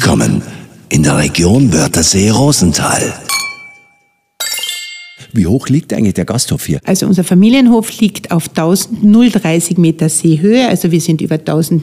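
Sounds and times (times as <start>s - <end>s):
speech: 0.1s - 3.5s, 5.3s - 11.8s
glasses clinking in a toast: 3.3s - 5.4s.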